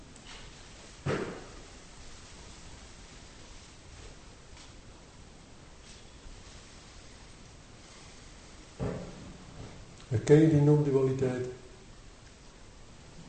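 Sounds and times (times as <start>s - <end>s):
steady rain hissing: 0.2s - 4.6s, 5.7s - 8.8s
speech: 10.1s - 11.6s.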